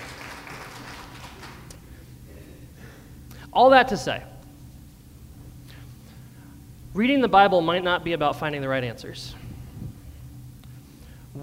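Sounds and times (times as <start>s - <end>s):
audience applause: 0.0s - 1.8s
speech: 3.6s - 4.3s, 7.0s - 9.4s.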